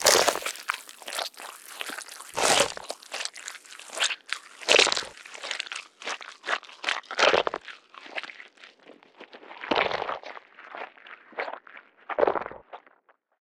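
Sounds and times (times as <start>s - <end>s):
zombie eating: 0.0s - 11.5s.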